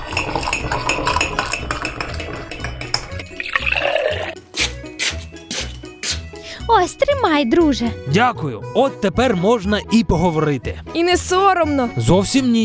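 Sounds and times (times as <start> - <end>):
light clinks of crockery: 0.0 - 4.2
tea being poured into a cup: 0.0 - 4.4
speech: 6.8 - 12.6.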